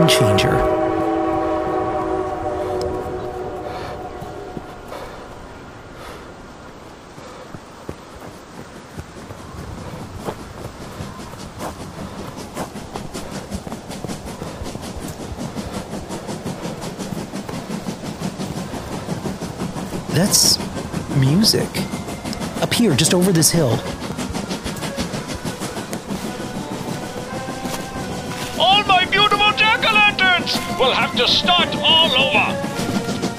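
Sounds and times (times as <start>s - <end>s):
train horn: 0.0s - 5.4s, 24.8s - 33.3s
speech: 0.1s - 0.5s, 20.3s - 20.6s, 21.4s - 22.0s, 22.7s - 24.0s
train wheels clattering on rails: 4.1s - 33.3s.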